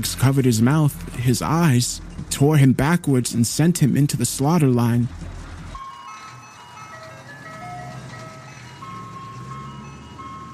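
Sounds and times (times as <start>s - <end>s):
speech: 0.0s - 5.3s
low truck engine rumble: 0.0s - 10.5s
ice cream truck jingle from roof-mounted loudspeaker: 4.4s - 10.5s.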